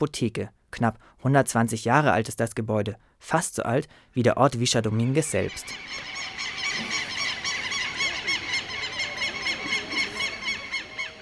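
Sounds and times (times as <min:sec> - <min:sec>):
speech: 0:00.0 - 0:06.2
parrots squawking in trees of a small village: 0:05.4 - 0:11.2.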